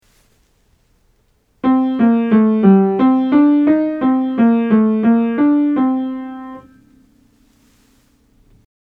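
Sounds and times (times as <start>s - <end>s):
modal scales for aural training: 1.6s - 6.8s.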